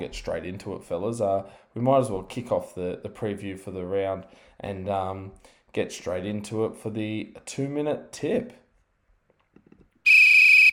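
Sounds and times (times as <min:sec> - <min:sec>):
speech: 0:00.0 - 0:08.6
referee whistle blast: 0:10.0 - 0:10.7.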